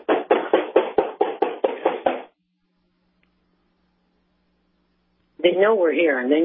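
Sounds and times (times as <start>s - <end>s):
loud knocks on a back door: 0.0s - 2.4s
speech: 5.4s - 6.4s.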